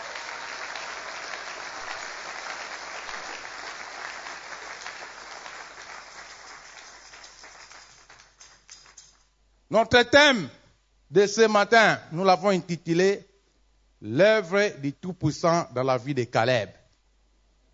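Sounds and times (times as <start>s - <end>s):
congregation applauding at a church service: 0.0s - 9.3s
speech: 9.7s - 13.3s, 14.0s - 16.8s.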